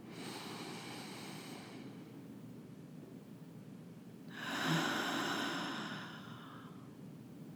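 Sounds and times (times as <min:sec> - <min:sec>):
slow breathing during a breath-awareness exercise: 0:00.1 - 0:02.1, 0:04.3 - 0:06.9.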